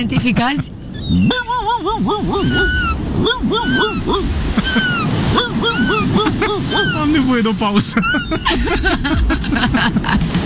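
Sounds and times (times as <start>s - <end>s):
speech: 0.0s - 10.4s
voice imitating a seagull: 1.1s - 7.4s
laughter: 1.3s - 10.4s.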